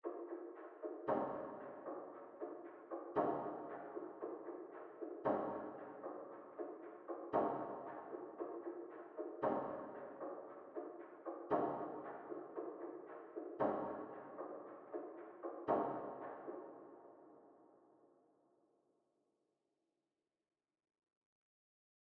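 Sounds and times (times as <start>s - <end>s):
percussion loop: 0.0s - 17.1s.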